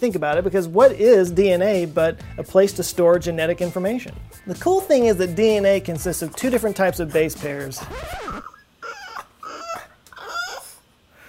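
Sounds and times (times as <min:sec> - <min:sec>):
speech: 0:00.0 - 0:08.5
dog whimpering: 0:07.8 - 0:10.9.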